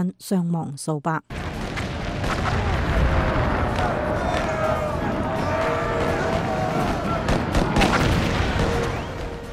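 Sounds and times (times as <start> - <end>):
speech: 0.0 - 1.5
artillery cannon bombardment: 1.3 - 9.5.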